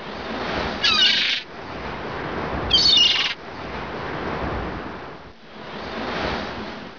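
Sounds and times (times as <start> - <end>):
waves: 0.0 - 6.9
seagulls calling: 0.8 - 1.4, 2.7 - 3.4.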